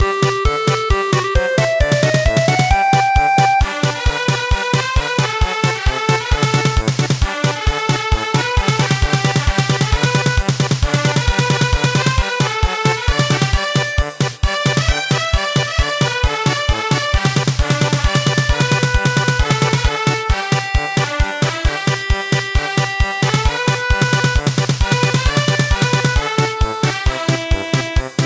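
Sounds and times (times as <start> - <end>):
march music: 0.0 - 28.2
alarm sound: 1.2 - 3.7.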